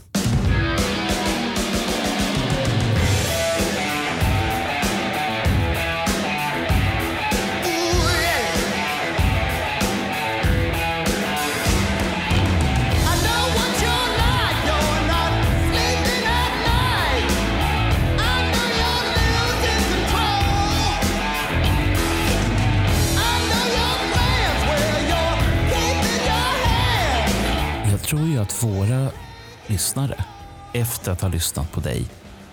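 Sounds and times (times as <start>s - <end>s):
heavy pounding rock drums with short slapback echo on snare, toms and bass drum: 0.0s - 27.8s
loud dense rock song with full band: 0.0s - 30.2s
energetic rock vocals over the full band: 7.6s - 8.9s, 13.0s - 21.5s, 23.1s - 32.2s
speech: 31.0s - 32.3s.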